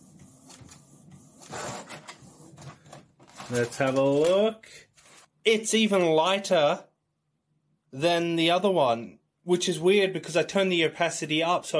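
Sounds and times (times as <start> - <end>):
printer printing the outline of a drawing: 0.0 - 4.0
speech: 3.5 - 6.9, 7.9 - 11.7.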